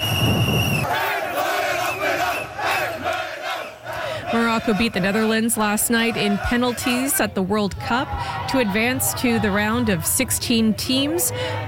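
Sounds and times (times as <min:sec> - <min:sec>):
whistle-like tone: 0:00.0 - 0:01.0
speech: 0:00.2 - 0:01.0, 0:04.6 - 0:11.6
large crowd of soccer fans roaring and chanting: 0:00.7 - 0:11.6.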